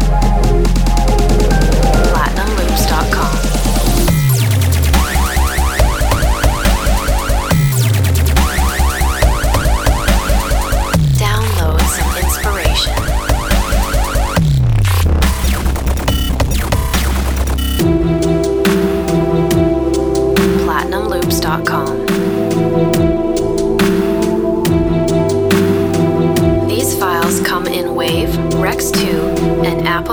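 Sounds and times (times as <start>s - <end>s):
cinematic dubstep: 0.2s - 30.1s
voice: 1.8s - 3.9s, 11.0s - 13.1s, 19.9s - 22.9s, 26.5s - 30.1s.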